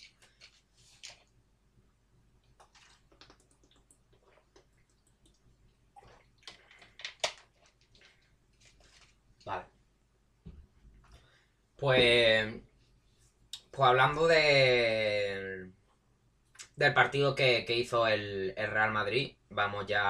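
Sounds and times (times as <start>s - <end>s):
person sipping and swallowing water: 2.4s - 9.2s
speech: 11.8s - 12.6s, 13.8s - 15.2s, 16.8s - 20.0s.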